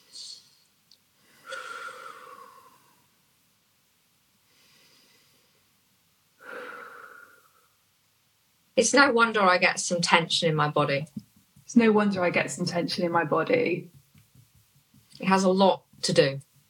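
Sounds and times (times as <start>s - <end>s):
deep breathing during a face-tapping relaxation exercise: 1.2s - 3.1s, 4.5s - 5.7s, 6.4s - 7.8s
speech: 8.8s - 14.0s, 15.2s - 16.5s.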